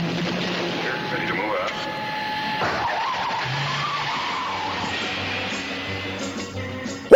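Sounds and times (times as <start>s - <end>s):
Batmobile engine starting and roaring: 0.1s - 6.2s
tires skidding and screeching: 0.7s - 6.2s.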